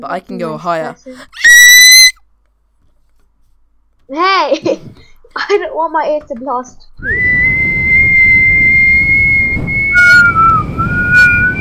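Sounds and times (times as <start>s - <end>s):
speech: 0.0s - 1.5s, 4.1s - 7.3s
person attempting to whistle a high pitch: 7.0s - 11.5s.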